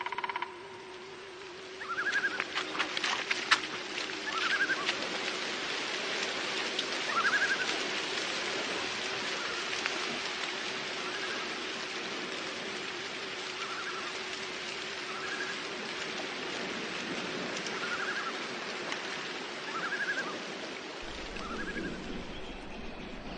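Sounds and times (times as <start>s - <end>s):
rain in stormy foggy weather: 0.0s - 23.3s
wind in stormy foggy weather: 0.0s - 23.3s.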